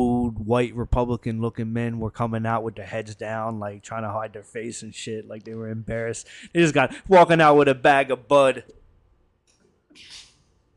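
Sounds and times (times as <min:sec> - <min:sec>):
speech: 0:00.5 - 0:08.8, 0:10.0 - 0:10.2
single sharp sneeze: 0:10.0 - 0:10.4.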